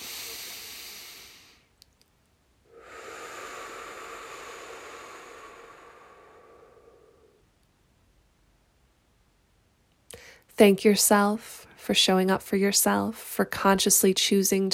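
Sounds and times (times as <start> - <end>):
person doing a full exhale out of the mouth: 0.0 - 1.7, 2.7 - 7.4
speech: 10.6 - 14.7.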